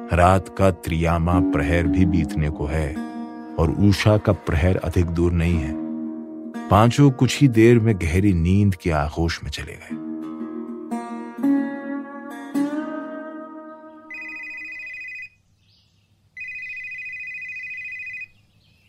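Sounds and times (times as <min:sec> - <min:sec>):
speech: 0:00.1 - 0:05.8, 0:06.6 - 0:10.0
cellphone ringing with melodic ringtone and electronic ring bursts: 0:14.1 - 0:15.4, 0:16.4 - 0:18.3.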